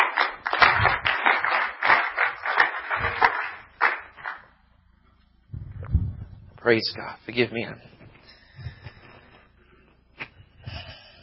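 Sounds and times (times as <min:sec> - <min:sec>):
crowd clapping in a dense lively burst of applause: 0:00.0 - 0:04.5
speech: 0:06.7 - 0:07.9.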